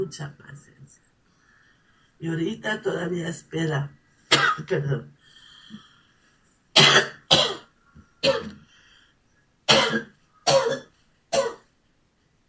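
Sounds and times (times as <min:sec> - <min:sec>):
speech: 0:00.0 - 0:00.7, 0:02.2 - 0:05.8
person coughing: 0:04.3 - 0:04.8, 0:06.8 - 0:08.6, 0:09.7 - 0:11.7.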